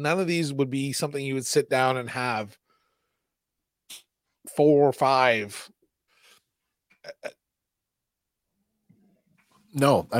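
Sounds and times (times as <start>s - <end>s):
speech: 0.0s - 2.6s, 3.9s - 5.8s, 9.8s - 10.1s
stifled burp: 7.0s - 7.4s.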